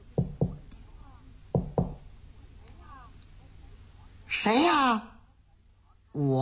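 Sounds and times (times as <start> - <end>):
knocking on a wooden door: 0.2 - 0.6, 1.5 - 2.0
speech: 4.4 - 5.1, 6.2 - 6.4.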